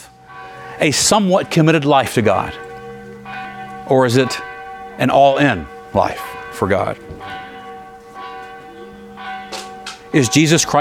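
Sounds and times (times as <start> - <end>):
church bells ringing: 0.0 - 10.8
speech: 0.8 - 2.7, 3.9 - 7.4, 10.1 - 10.8.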